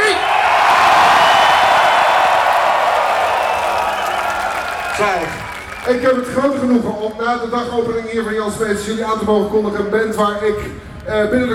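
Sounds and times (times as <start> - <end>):
large festival crowd cheering: 0.0 - 6.7
speech: 5.2 - 11.5.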